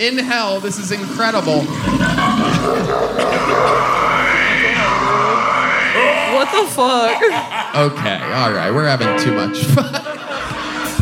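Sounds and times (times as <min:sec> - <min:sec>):
speech: 0:00.0 - 0:04.2, 0:06.0 - 0:10.3
toilet flushing: 0:00.0 - 0:07.5
laughter: 0:01.7 - 0:11.0.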